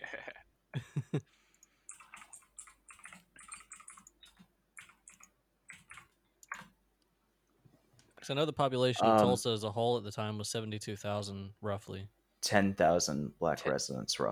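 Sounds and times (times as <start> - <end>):
computer keyboard typing: 1.6 - 6.8
speech: 8.3 - 14.3.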